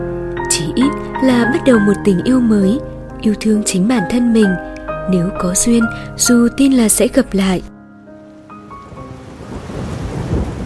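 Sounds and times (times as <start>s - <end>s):
speech: 0.0s - 7.7s
steady rain on a rainy afternoon in Hanoi: 8.3s - 10.6s
thunder rumbling low and heavy in Hanoi: 9.2s - 10.6s.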